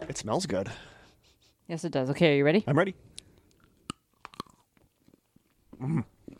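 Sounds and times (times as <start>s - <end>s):
speech: 0.1s - 0.9s, 1.7s - 3.1s, 5.8s - 6.1s
quiet chewing: 3.1s - 6.3s
crunching on dark chocolate bar with Cocoa Pebbles cereal pieces: 3.5s - 5.6s.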